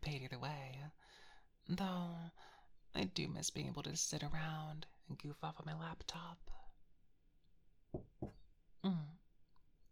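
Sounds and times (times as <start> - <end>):
speech: 0.1 - 6.6, 7.9 - 9.2
solid knocks on a door: 7.9 - 8.4.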